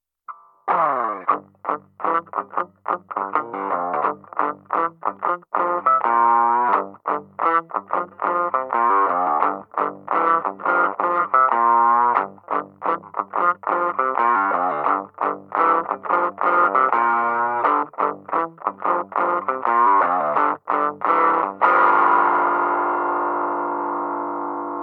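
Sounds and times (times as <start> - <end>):
blues music in G: 0.3 - 24.8.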